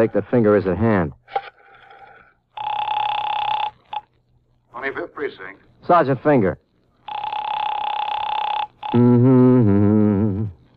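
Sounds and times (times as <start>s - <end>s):
speech: 0.0s - 1.5s, 4.8s - 6.6s, 9.0s - 9.8s
telephone bell ringing: 2.6s - 4.0s, 7.1s - 9.0s.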